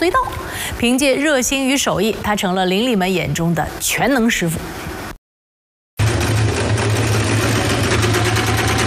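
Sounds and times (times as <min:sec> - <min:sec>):
speech: 0:00.0 - 0:04.9
electric sewing machine stitching trouser hems: 0:06.0 - 0:08.8.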